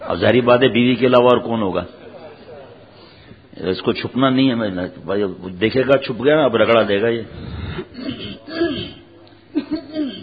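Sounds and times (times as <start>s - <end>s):
speech: 0.1s - 2.0s, 3.6s - 8.6s
person clearing throat with rough coughs: 7.8s - 10.2s.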